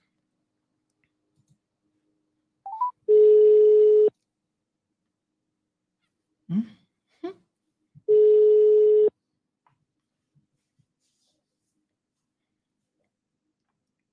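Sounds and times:
phone dialing beeps as a call is placed: 2.7s - 4.1s
steady buzzing phone tone: 8.1s - 9.1s.

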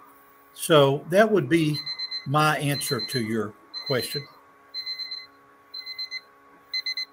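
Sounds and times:
faint steady hum: 0.0s - 7.1s
speech: 0.6s - 4.4s
electronic debate timer alarm beeping: 1.7s - 7.1s.

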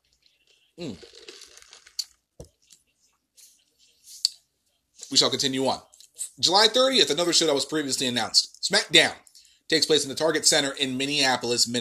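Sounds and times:
lip smacks: 0.1s - 2.8s
speech: 0.8s - 1.2s, 5.1s - 11.8s
wet slurp of a drink: 0.8s - 2.2s.

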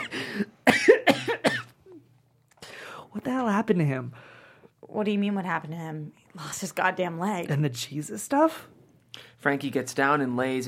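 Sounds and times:
harsh coughing: 0.0s - 2.0s
speech: 3.3s - 4.3s, 4.9s - 8.8s, 9.4s - 10.6s.

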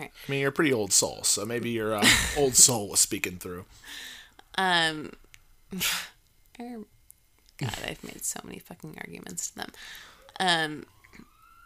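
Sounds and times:
speech: 0.0s - 7.0s, 7.6s - 11.3s
emergency vehicle siren wailing outside: 9.9s - 11.6s.

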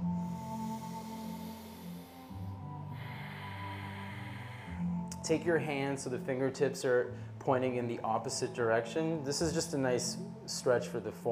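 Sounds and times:
slow airy breathing in and out through the nose: 0.1s - 5.2s
speech: 5.3s - 11.3s.

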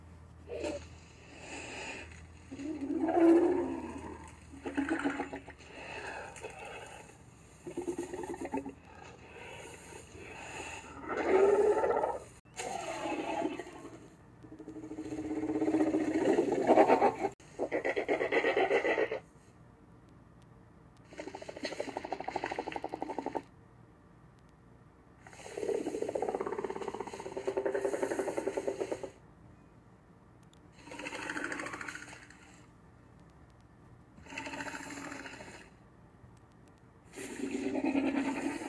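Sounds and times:
film dinosaur raspy wheezing calls and snorts: 0.5s - 19.2s, 21.1s - 23.5s, 25.2s - 29.2s, 30.8s - 32.7s, 34.2s - 35.8s, 37.1s - 38.6s
sharp clicks: 30.4s - 34.1s, 36.3s - 36.9s.

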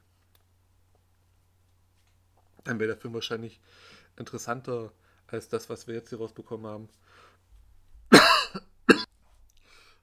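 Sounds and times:
speech: 2.7s - 7.3s
person coughing harshly: 8.1s - 9.1s.

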